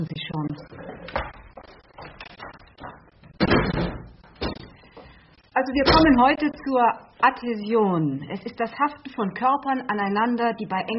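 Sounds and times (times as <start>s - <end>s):
speech: 0.0s - 0.8s, 5.6s - 10.9s
windows being shut: 3.3s - 4.7s.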